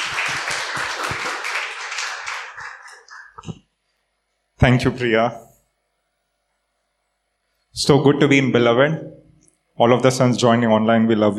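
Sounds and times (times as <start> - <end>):
audience clapping: 0.0 - 3.6
speech: 4.6 - 5.5, 7.8 - 9.2, 9.8 - 11.3.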